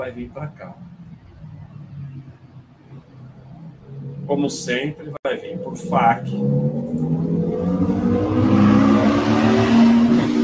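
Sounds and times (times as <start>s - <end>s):
speech: 0.0s - 0.9s, 4.3s - 9.7s
two motorcycles passing at the same time: 0.8s - 10.4s.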